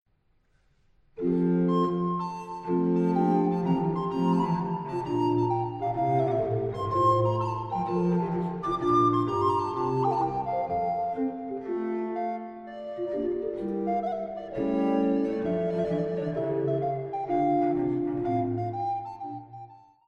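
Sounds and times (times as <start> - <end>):
baroque flute sonata movement with basso continuo: 1.2 - 20.0.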